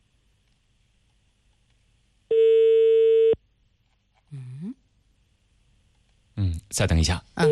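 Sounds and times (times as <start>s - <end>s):
telephone line tone on an unanswered call to a traffic police office: 2.3s - 3.4s
speech: 6.7s - 7.4s.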